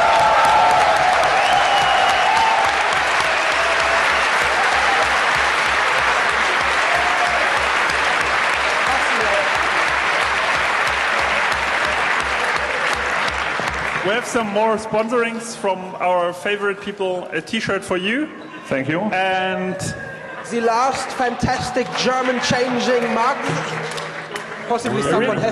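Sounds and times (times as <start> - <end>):
audience applause for a winner being announced: 0.0 - 14.6, 20.5 - 25.4
speech: 14.3 - 24.0, 24.7 - 25.4.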